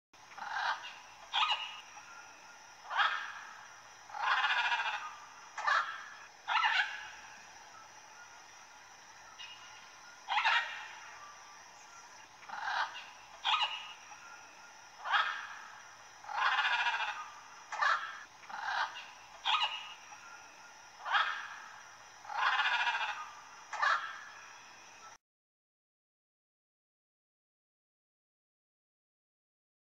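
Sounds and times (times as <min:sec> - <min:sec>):
red macaw calling: 0:00.3 - 0:02.1, 0:02.8 - 0:07.4, 0:09.4 - 0:20.4, 0:21.0 - 0:24.5.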